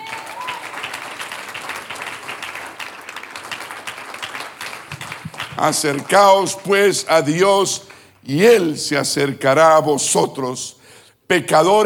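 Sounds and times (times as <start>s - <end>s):
congregation applauding: 0.0s - 8.2s
speech: 5.6s - 11.8s.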